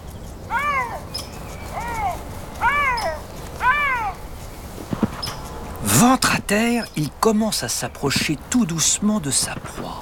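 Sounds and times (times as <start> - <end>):
lynx giving short high meows: 0.5 - 4.4
speech: 6.0 - 10.0.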